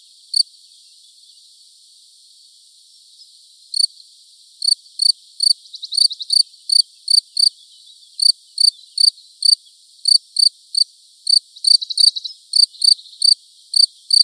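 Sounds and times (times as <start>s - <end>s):
field cricket chirping in Buoux Vaucluse France: 0.0s - 14.2s.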